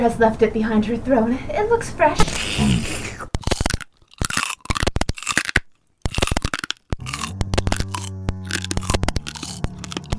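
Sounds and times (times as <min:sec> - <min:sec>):
speech: 0:00.0 - 0:03.0
crunchy chewing of a fresh leafy wreath: 0:02.2 - 0:10.1.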